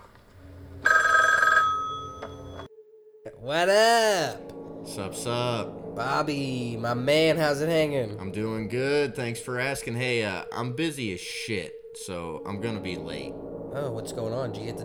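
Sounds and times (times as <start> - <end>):
telephone ringing: 0.7 - 2.7
speech: 3.5 - 4.4, 5.0 - 14.8.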